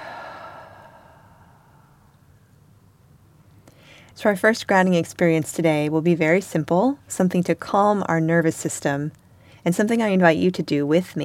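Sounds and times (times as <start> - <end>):
slow breath in and out: 0.0 - 2.2
speech: 4.2 - 11.2.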